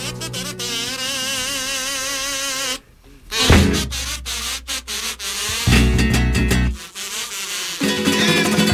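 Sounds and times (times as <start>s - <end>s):
mosquito buzzing with a wavering whine: 0.0s - 8.6s
low thuds: 3.4s - 4.7s.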